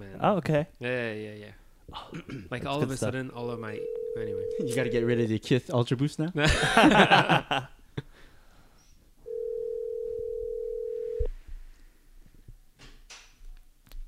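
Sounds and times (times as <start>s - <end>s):
speech: 0.2s - 7.8s
telephone dial tone: 3.8s - 5.0s, 9.3s - 11.3s
laughter: 6.4s - 7.7s.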